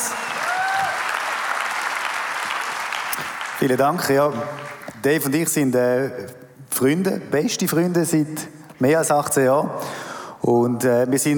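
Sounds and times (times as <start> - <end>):
audience applause welcoming speakers onto a stage: 0.0 - 5.0
speech: 3.2 - 11.3.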